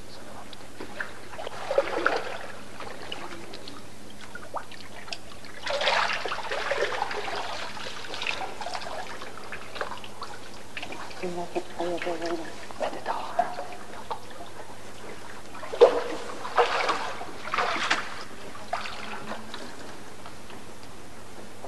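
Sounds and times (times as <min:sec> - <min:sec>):
water trickling during a Christian baptism: 0:00.8 - 0:20.0
water splashing and pouring during a Christian baptism: 0:01.0 - 0:11.2, 0:15.5 - 0:19.8.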